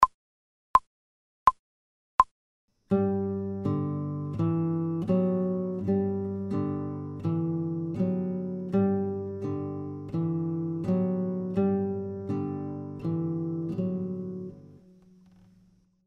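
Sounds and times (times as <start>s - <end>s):
guitar playing slow F note: 2.9s - 15.5s.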